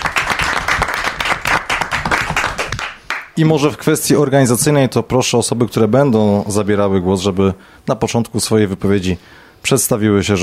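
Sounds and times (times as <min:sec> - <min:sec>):
audience in a radio studio applauding: 0:00.0 - 0:03.3
speech: 0:03.4 - 0:10.4.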